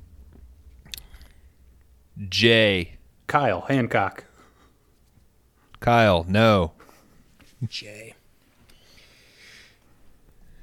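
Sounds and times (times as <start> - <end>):
low hum: 0.0 - 10.6
person sipping a drink: 0.8 - 1.4
speech: 2.2 - 4.3, 5.8 - 6.8, 7.6 - 8.2.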